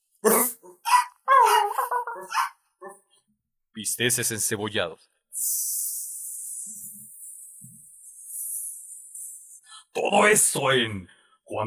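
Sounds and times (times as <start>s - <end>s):
speech: 0.2s - 0.6s, 3.8s - 5.7s, 10.1s - 11.6s
dogs barking growly and yipping: 0.3s - 3.0s.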